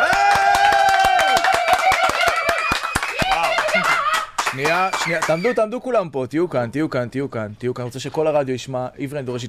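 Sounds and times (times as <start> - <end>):
fast steady rhythmic hand clapping: 0.0 - 5.5
speech: 4.6 - 9.4.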